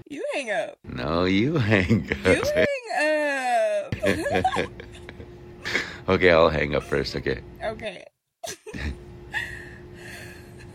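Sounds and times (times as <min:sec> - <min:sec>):
speech: 0:00.0 - 0:02.7, 0:04.0 - 0:05.0, 0:05.7 - 0:09.0
faint constant hum: 0:00.0 - 0:10.7
laughter: 0:01.6 - 0:02.8, 0:03.9 - 0:05.9
sharp intake of breath: 0:05.6 - 0:06.1.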